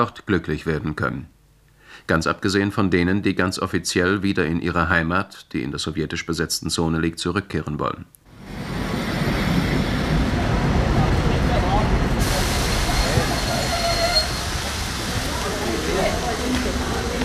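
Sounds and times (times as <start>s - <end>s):
speech: 0.0s - 1.4s, 2.0s - 8.8s
express train standing after pulling into a station: 8.3s - 17.2s.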